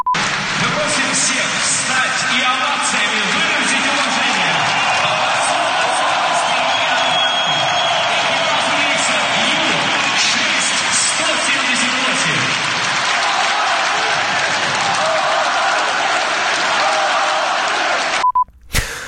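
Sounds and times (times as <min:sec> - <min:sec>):
football stadium crowd roaring and cheering: 0:00.0 - 0:18.3
football stadium crowd shouting: 0:03.6 - 0:10.9, 0:12.9 - 0:18.2.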